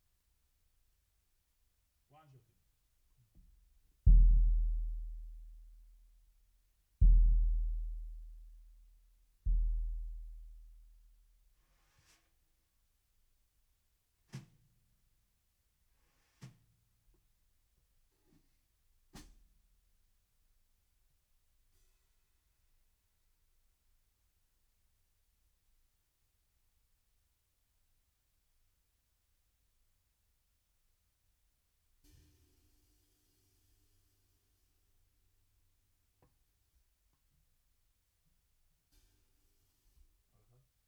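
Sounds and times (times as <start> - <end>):
bass drum hit: 4.1 - 5.9, 7.0 - 8.8, 9.5 - 11.0.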